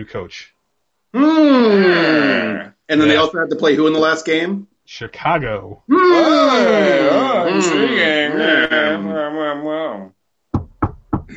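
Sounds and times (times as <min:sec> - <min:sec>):
speech: 0:00.0 - 0:10.1
person humming: 0:01.2 - 0:03.4, 0:05.9 - 0:10.2
knocks on a wooden surface: 0:10.5 - 0:11.3.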